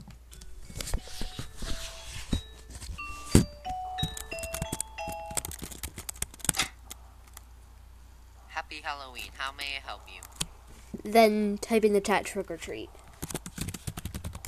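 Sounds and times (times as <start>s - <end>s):
doorbell chime at a house in a Halloween video game: 1.9s - 5.6s
speech: 8.9s - 10.3s, 11.1s - 13.0s.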